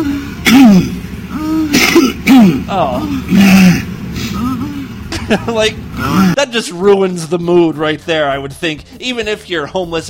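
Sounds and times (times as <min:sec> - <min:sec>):
speech: 0:00.0 - 0:00.9, 0:02.5 - 0:03.8, 0:05.3 - 0:10.0
man throaty voiced groaning: 0:00.0 - 0:06.4
man coughing up phlegm: 0:00.4 - 0:01.0, 0:01.7 - 0:06.4.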